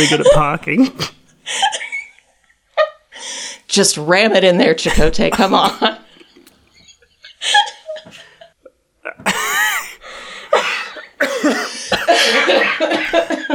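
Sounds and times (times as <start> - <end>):
speech: 0.0 - 1.8, 3.7 - 6.0, 7.4 - 7.7
person coughing and clearing throat: 4.9 - 6.0, 9.1 - 12.5
person laughing in breathy bursts: 11.2 - 13.5.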